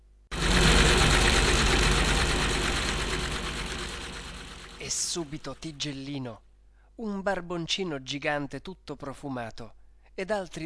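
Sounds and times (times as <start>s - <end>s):
boat engine starting and idling with chugging rumble: 0.3s - 5.6s
speech: 4.9s - 10.6s.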